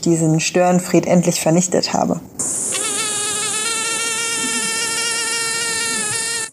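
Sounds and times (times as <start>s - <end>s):
speech: 0.0s - 2.7s
female mosquito high-pitched wingbeat whine: 2.4s - 6.5s.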